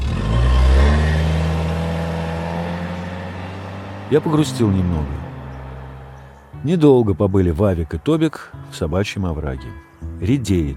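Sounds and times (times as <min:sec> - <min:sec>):
car engine revving as the vehicle drives away: 0:00.0 - 0:06.6
speech: 0:04.1 - 0:05.3, 0:06.6 - 0:10.7.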